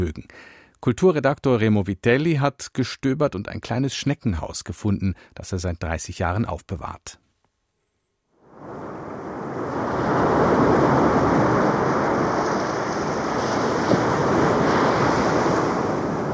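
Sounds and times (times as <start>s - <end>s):
speech: 0.0s - 7.2s
ocean waves rolling onto a sandy beach: 8.4s - 16.3s.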